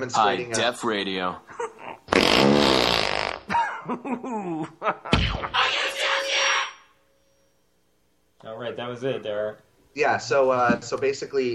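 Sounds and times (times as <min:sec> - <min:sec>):
speech: 0:00.0 - 0:01.7, 0:03.9 - 0:06.1, 0:08.4 - 0:11.5
recorded long loud wet fart in a radio spot: 0:02.1 - 0:03.5
brief voices laughing or reacting: 0:03.5 - 0:05.2.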